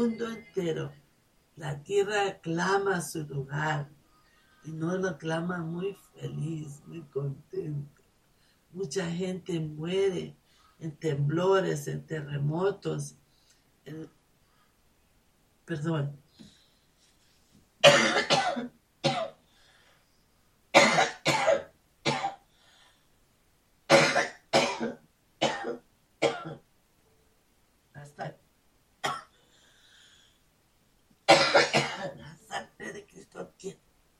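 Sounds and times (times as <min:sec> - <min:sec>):
speech: 0:00.0 - 0:01.0, 0:01.6 - 0:04.0, 0:04.6 - 0:08.0, 0:08.7 - 0:13.2, 0:13.8 - 0:14.2, 0:15.7 - 0:16.2
person coughing harshly: 0:17.8 - 0:19.4, 0:20.8 - 0:22.4, 0:23.9 - 0:26.6, 0:31.3 - 0:33.0.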